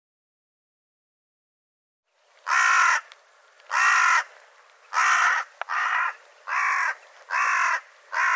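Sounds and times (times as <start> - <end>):
bird giving harsh hoarse caws: 2.4 - 3.1, 3.7 - 8.3.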